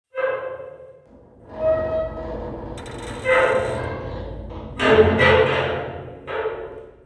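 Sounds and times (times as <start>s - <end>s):
creaking ambient materials: 0.3s - 7.0s.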